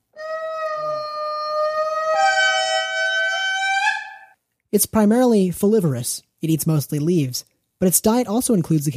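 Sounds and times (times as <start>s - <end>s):
indri lemur horn-like wailing call: 0.2s - 4.4s
speech: 4.7s - 8.9s.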